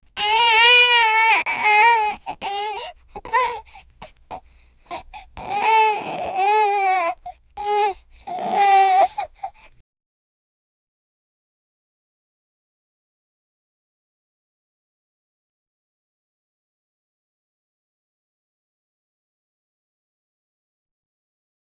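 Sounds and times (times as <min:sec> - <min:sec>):
baby crying: 0:00.2 - 0:09.7.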